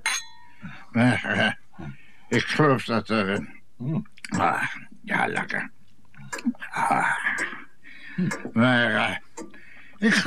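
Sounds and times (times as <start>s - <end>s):
glasses clinking in a toast: 0.0s - 0.5s
speech: 1.0s - 1.6s, 2.3s - 5.8s, 6.4s - 7.6s, 8.2s - 9.2s, 10.0s - 10.2s.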